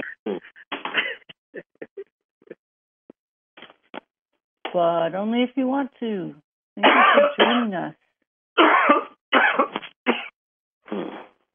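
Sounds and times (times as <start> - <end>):
person with allergies coughing: 0.0 - 2.0, 6.8 - 7.7, 8.6 - 10.3
speech: 4.7 - 8.0.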